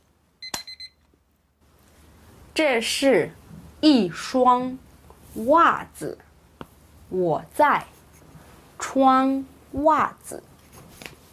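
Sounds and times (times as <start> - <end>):
alarm clock high electronic beeps: 0.4 - 1.0
speech: 2.6 - 6.2, 7.1 - 7.9, 8.9 - 10.5.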